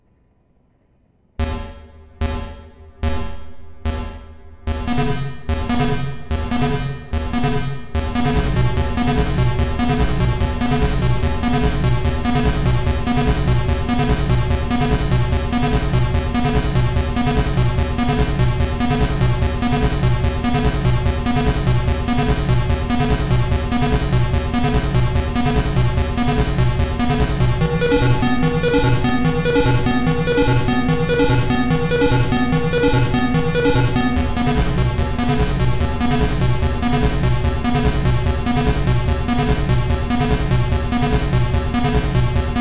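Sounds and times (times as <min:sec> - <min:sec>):
8 step sequencer and simple synth pattern: 0:01.4 - 0:42.5.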